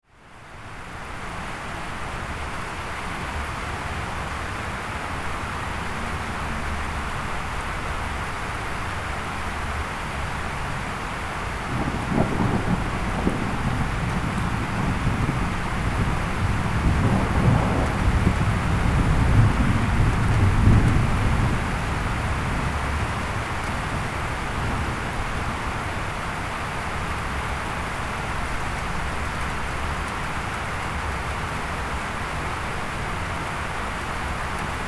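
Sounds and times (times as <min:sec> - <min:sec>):
rain: 0:00.0 - 0:34.8
thunder from lightning: 0:11.6 - 0:23.2.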